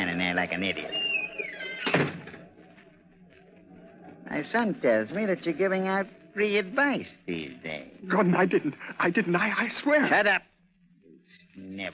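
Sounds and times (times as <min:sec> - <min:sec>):
speech: 0:00.4 - 0:01.0, 0:04.4 - 0:10.5, 0:11.6 - 0:11.9
ship captain's cabin door creaking and shutting with a thud: 0:00.8 - 0:02.5.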